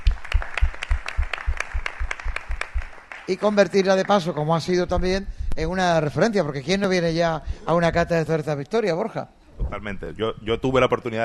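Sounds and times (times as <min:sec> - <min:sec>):
loud applause at a beer tasting event: 0:00.0 - 0:04.4
speech: 0:03.3 - 0:11.2.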